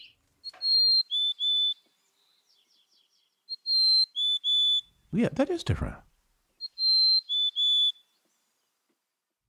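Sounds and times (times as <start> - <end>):
mountain chickadee singing whistled notes: 0.0 - 1.8, 3.5 - 4.9, 6.6 - 8.1
speech: 5.1 - 6.1.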